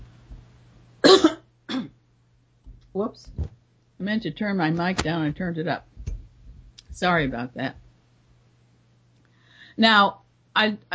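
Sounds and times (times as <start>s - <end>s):
faint noise: 0.0s - 10.9s
person with a rough throat coughing: 1.0s - 2.0s
speech: 3.0s - 5.9s, 7.0s - 7.8s, 9.8s - 10.9s.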